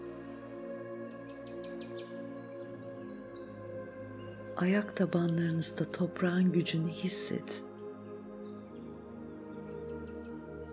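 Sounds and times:
birds chirping and warbling: 1.1 - 4.8, 6.9 - 10.7
speech: 4.6 - 7.7.

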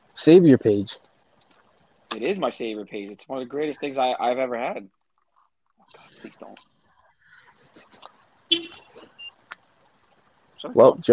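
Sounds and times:
speech: 0.2 - 1.1, 2.1 - 5.0, 5.9 - 6.7, 10.6 - 11.1
car horn beep as a car is locked: 8.5 - 9.0.

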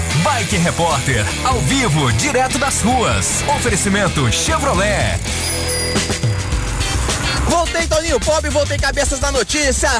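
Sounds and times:
speech: 0.4 - 6.3, 7.5 - 9.9
heavier trucks surging past: 5.2 - 7.6.

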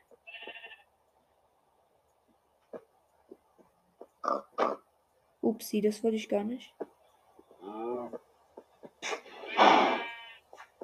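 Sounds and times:
speech: 5.5 - 6.8
pig squealing: 9.0 - 10.3.

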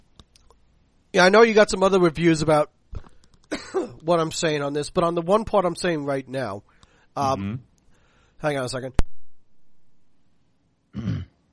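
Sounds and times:
speech: 1.2 - 2.8, 4.0 - 7.7, 8.4 - 9.0
short throaty cough: 3.5 - 4.0, 11.0 - 11.3.

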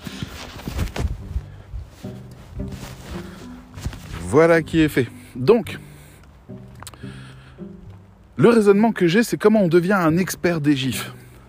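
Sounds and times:
glove rustling as it is put on a hand: 0.0 - 8.1
speech: 4.3 - 5.9, 8.4 - 11.2.

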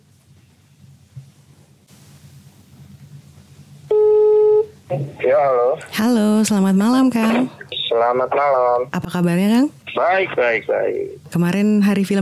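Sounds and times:
buzzy telephone ringback tone: 3.9 - 4.7
speech: 4.9 - 12.2.

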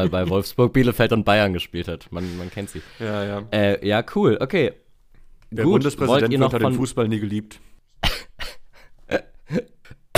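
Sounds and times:
speech: 0.0 - 4.8, 5.5 - 8.2, 9.1 - 9.8
coughing: 8.0 - 10.1.

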